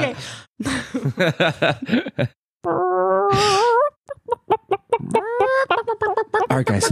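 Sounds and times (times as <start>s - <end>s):
speech: 0.2s - 3.6s, 6.6s - 6.8s
man imitating a chicken clucking and squawking: 2.7s - 6.8s.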